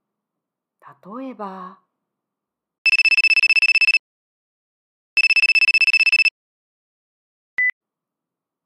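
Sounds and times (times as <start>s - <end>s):
speech: 0.9s - 1.8s
telephone ringing with trilling bursts: 2.9s - 4.0s, 5.2s - 6.3s.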